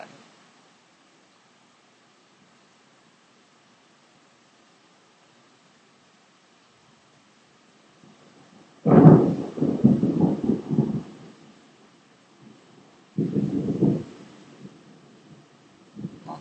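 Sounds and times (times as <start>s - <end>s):
faint wind or rain hiss: 0.0s - 16.3s
loud low thunder rumbling: 8.0s - 16.3s.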